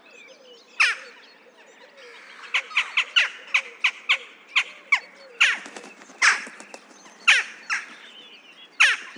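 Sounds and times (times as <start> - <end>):
Western jackdaw Coloeus monedula calls: 2.1 - 9.1.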